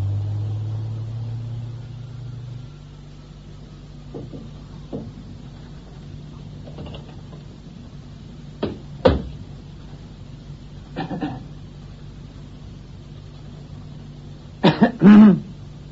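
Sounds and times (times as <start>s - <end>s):
low steady hum: 0.0s - 15.9s
man coughing in short sharp bursts: 11.0s - 11.5s, 14.6s - 15.5s.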